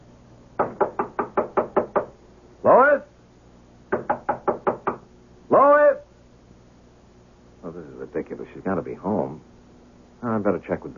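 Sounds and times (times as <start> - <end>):
sharp knocks on an apartment door: 0.6 - 2.2, 3.9 - 5.1
man calling out: 2.6 - 3.1, 5.5 - 6.1
speech: 8.3 - 9.5, 10.2 - 10.9.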